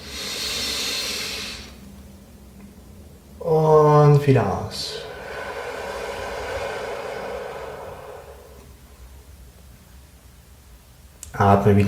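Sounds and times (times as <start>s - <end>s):
deep breath in during a group guided breathing exercise: 0.0s - 1.8s, 4.8s - 9.3s
speech: 4.2s - 5.0s, 11.4s - 11.8s.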